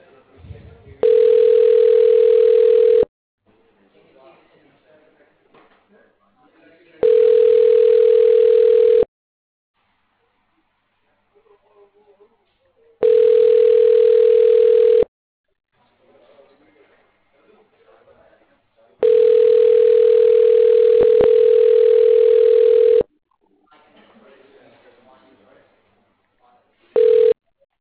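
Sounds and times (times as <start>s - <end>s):
telephone ringback tone while call connects: 1.0s - 3.1s, 7.0s - 9.1s, 13.0s - 15.1s, 19.0s - 23.1s, 27.0s - 27.4s.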